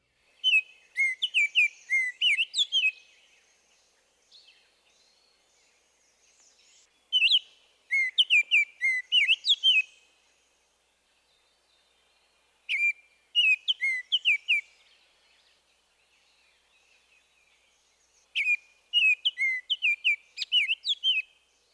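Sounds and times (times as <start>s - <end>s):
male northern oriole singing flute-like whistled phrases: 0.4s - 3.1s, 7.1s - 10.0s, 12.7s - 14.7s, 18.4s - 21.3s.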